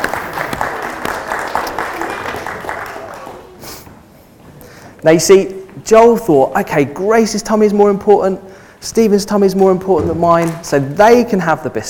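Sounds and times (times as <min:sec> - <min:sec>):
audience applause: 0:00.0 - 0:03.7
speech: 0:05.0 - 0:11.8.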